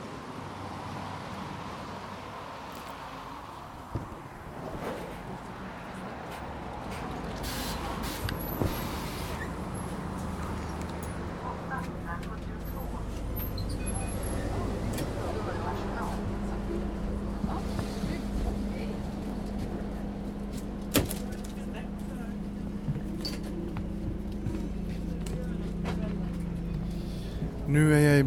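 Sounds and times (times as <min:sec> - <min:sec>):
large bus engine rumbling at a roadside: 0:00.0 - 0:28.2
street noise: 0:00.0 - 0:28.2.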